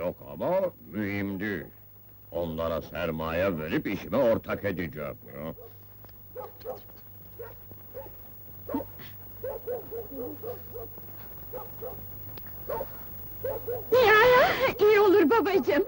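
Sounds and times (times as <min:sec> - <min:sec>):
low steady electrical hum: 0:00.0 - 0:15.8
speech: 0:00.1 - 0:05.7, 0:12.7 - 0:15.8
small dog barking and yipping: 0:05.6 - 0:14.0.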